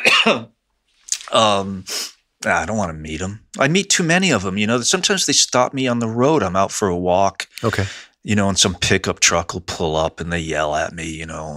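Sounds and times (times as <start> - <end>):
person coughing during a conversation: 0.0 - 0.5, 7.6 - 8.0
speech: 0.2 - 0.6, 1.3 - 11.5.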